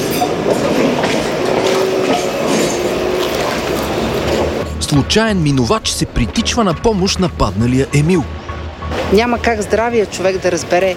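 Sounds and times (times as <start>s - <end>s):
tram rumbling past on its rails: 0.0s - 10.9s
speech: 4.9s - 8.4s, 9.1s - 10.9s.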